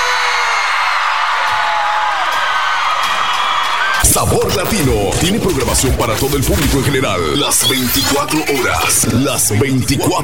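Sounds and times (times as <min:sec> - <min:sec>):
large concert crowd shouting and cheering for an encore: 0:00.0 - 0:06.3
speech: 0:04.2 - 0:10.2.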